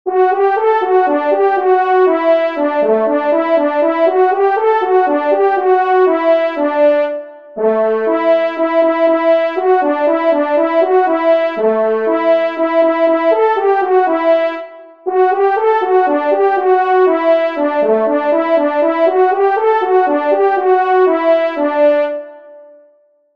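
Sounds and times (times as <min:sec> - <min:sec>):
hunting horn solo: 0:00.1 - 0:22.6.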